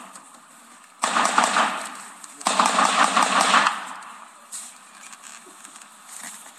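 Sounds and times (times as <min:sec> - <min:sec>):
automatic gunfire from gunmen shooting from roofs of family homes in Banamichi Sonora: 0:01.0 - 0:04.0.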